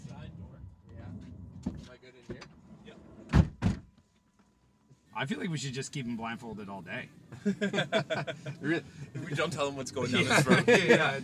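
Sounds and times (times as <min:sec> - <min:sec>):
quieter rumbling and movement: 0:00.0 - 0:04.0
van side door sliding and shutting: 0:01.1 - 0:03.9
speech: 0:05.2 - 0:11.2
laughter: 0:07.3 - 0:11.2.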